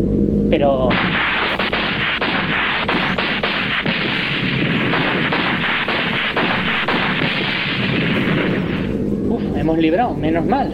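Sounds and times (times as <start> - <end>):
speech: 0.6 - 1.3, 9.7 - 10.7
video game gunfire shooting down planes: 0.9 - 9.1
booming impacts: 0.9 - 9.8.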